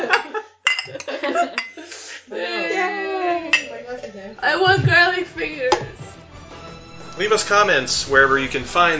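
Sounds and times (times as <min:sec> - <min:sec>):
glasses clinking together in a toast: 0:00.6 - 0:01.8, 0:03.5 - 0:03.9
cheerful voices: 0:02.3 - 0:06.2, 0:06.9 - 0:08.9
speech: 0:04.4 - 0:06.0, 0:07.2 - 0:08.9.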